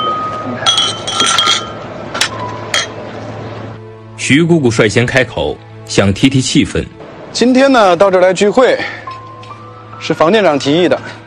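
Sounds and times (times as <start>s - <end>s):
wine glasses clinking in a toast: 0.0s - 3.0s
speech: 4.3s - 9.0s, 10.0s - 11.2s.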